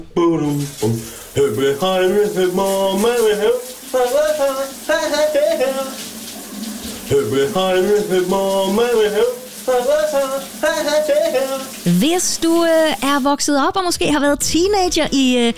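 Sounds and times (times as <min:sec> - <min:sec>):
man singing in the shower: 0:00.0 - 0:06.0, 0:07.1 - 0:11.8
speech: 0:00.0 - 0:06.1, 0:07.1 - 0:15.5
shower water running: 0:00.5 - 0:13.7.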